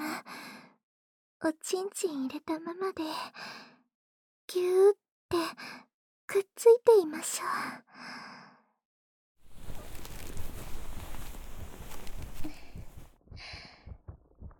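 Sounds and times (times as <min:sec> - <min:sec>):
speech: 0:01.4 - 0:03.7, 0:04.5 - 0:08.3
rustling noise: 0:09.4 - 0:13.1
heartbeat thumps: 0:11.0 - 0:14.5.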